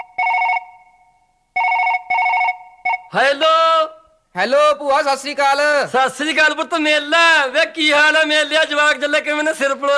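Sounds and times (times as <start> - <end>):
telephone ringing with a high electronic trill before a call is answered: 0.0 - 3.2
speech: 3.1 - 9.9.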